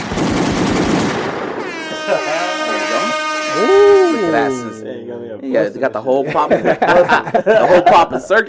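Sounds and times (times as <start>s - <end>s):
rapid machine-gun-like gunshot sound effects: 0.0s - 1.7s
sustained tonal sounds: 1.7s - 5.1s
laughter: 1.9s - 4.8s, 6.0s - 8.4s
speech: 4.4s - 8.4s.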